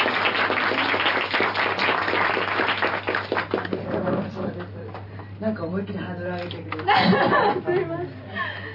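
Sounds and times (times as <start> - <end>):
audience applause: 0.0 - 3.8
speech: 5.6 - 8.2
laughter: 6.9 - 8.6.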